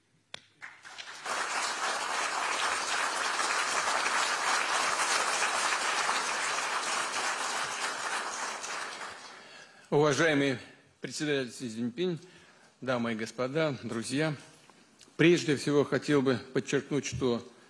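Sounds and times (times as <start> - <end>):
sustained applause from a large audience: 0.6 - 9.6
speech: 9.9 - 14.5, 15.2 - 17.6.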